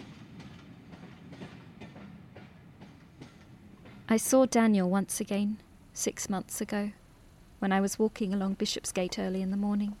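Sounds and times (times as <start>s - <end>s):
train wheels clickety-clack on rails: 0.0s - 4.4s
train heading east rumbling along the tracks: 0.0s - 5.2s
speech: 4.1s - 7.0s, 7.6s - 9.9s.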